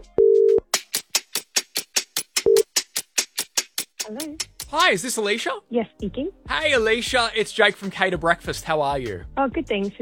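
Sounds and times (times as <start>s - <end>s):
steady electronic phone tone during outgoing call: 0.2s - 0.6s
speech: 4.1s - 10.0s.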